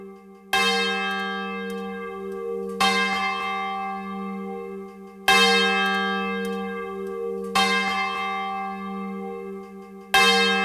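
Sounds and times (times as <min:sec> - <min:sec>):
large swinging church bell ringing a call to worship: 0:00.0 - 0:10.6.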